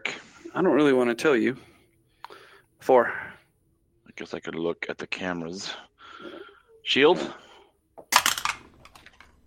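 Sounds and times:
speech: 0.6s - 1.7s, 2.8s - 3.3s, 4.2s - 5.9s, 6.9s - 7.4s
dice rolled for initiative clattering onto a hard surface: 8.0s - 9.4s.

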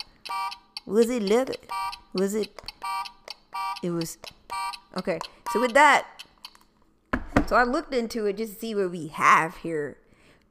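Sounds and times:
speech: 0.9s - 2.7s, 3.8s - 4.4s, 5.0s - 6.2s, 7.5s - 10.0s
voice imitating a game show buzzer: 0.9s - 6.2s.

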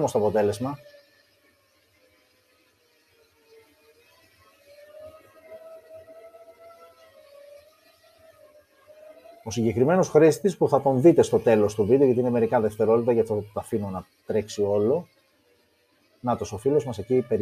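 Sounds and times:
speech: 0.0s - 0.9s, 9.5s - 15.2s, 16.2s - 17.4s
drone propellers whirring while carrying a phone: 0.0s - 17.4s.

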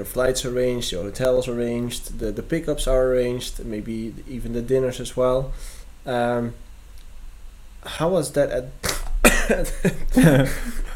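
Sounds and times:
speech: 0.0s - 6.6s, 7.8s - 8.8s, 9.5s - 10.9s
person coughing harshly: 8.8s - 10.9s.

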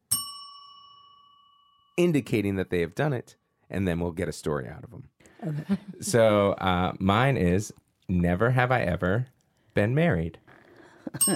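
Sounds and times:
bright metallic bell strike: 0.1s - 2.0s
speech: 2.0s - 10.4s, 11.1s - 11.3s
laughter: 5.4s - 6.4s.

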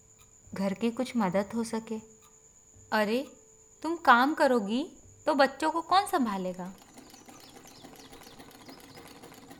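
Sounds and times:
speech: 0.6s - 2.2s, 2.9s - 6.8s
sewing machine running: 6.4s - 9.5s.

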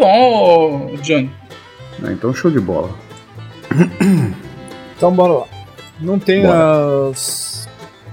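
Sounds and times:
speech: 1.0s - 1.4s, 2.0s - 3.0s, 3.7s - 4.4s, 5.0s - 7.4s
throat clearing: 3.7s - 4.6s.

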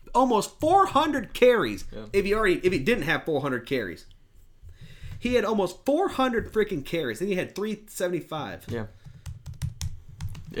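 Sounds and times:
speech: 0.2s - 4.1s, 5.2s - 9.0s
rapid uneven typing on a computer keyboard: 8.7s - 10.5s.

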